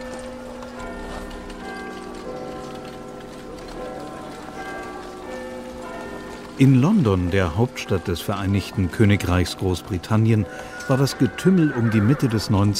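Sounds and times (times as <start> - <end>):
horses pulling wagons, omnibuses and cabs clip-clopping through a big-city street: 0.0 - 8.7
speech: 6.6 - 12.7.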